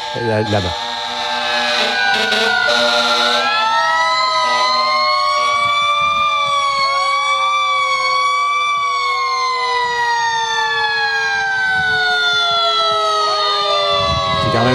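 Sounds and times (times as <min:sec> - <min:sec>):
fire truck sirens wailing in tribute: 0:00.0 - 0:14.7
speech: 0:00.1 - 0:00.9, 0:14.6 - 0:14.7.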